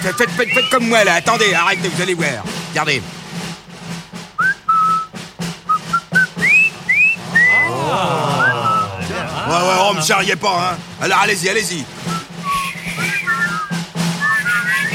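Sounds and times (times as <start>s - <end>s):
person whistling a tune: 0.0s - 2.0s, 4.4s - 9.0s, 12.0s - 14.9s
speech: 0.0s - 3.2s, 9.5s - 12.0s
laughter: 7.2s - 10.7s.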